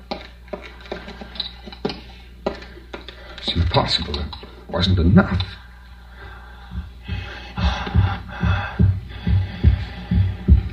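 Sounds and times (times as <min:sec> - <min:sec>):
speech: 0:03.4 - 0:05.6
heartbeat through a stethoscope: 0:06.6 - 0:10.7.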